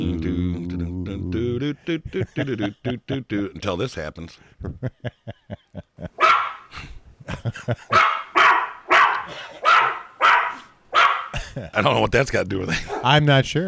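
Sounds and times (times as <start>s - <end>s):
laughter: 1.6s - 3.8s, 4.6s - 6.2s, 7.2s - 8.0s, 11.3s - 12.0s
speech: 1.6s - 5.6s, 6.7s - 8.2s, 11.6s - 13.6s
puppy barking: 6.2s - 6.7s, 7.9s - 11.4s, 12.9s - 13.1s.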